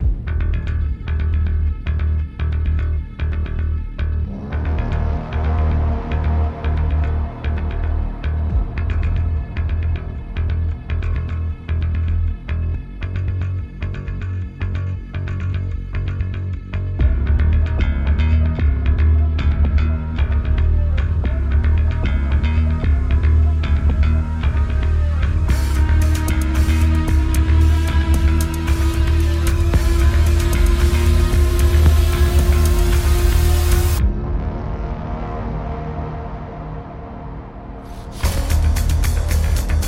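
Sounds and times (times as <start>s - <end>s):
heavy guitar loop music: 0.0s - 39.8s.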